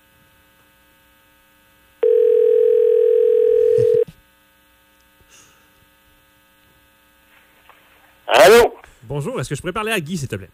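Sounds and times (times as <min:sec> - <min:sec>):
telephone line ringing tone as a call is placed: 0:02.0 - 0:04.1
speech: 0:09.1 - 0:10.5.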